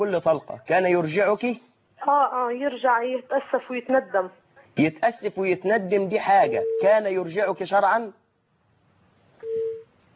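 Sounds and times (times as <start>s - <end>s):
speech: 0.0s - 8.2s
faint low hum: 0.0s - 10.1s
phone busy-tone beep after a call cuts off: 6.5s - 6.9s, 9.4s - 9.8s.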